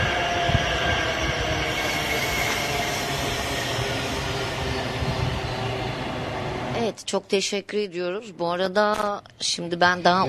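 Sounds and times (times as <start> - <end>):
high-speed train passing: 0.0 - 8.4
speech: 7.0 - 10.2.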